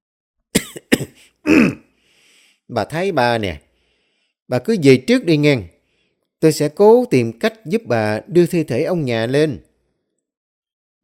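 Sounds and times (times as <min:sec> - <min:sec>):
old man coughing and clearing his throat: 0:00.6 - 0:01.9
speech: 0:01.0 - 0:01.8, 0:02.7 - 0:03.6, 0:04.5 - 0:05.7, 0:06.4 - 0:09.7.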